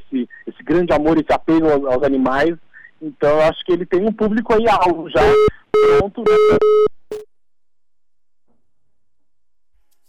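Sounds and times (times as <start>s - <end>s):
speech: 0.7s - 7.0s
telephone busy tone after a dropped call: 5.2s - 7.2s.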